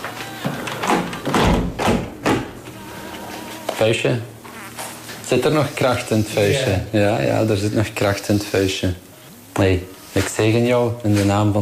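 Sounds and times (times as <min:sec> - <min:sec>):
window being shut: 0:00.5 - 0:02.6
speech: 0:03.8 - 0:04.3, 0:05.3 - 0:11.6.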